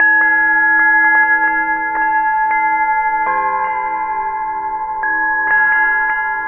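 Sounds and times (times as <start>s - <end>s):
bell ringing slowly: 0.0s - 6.4s.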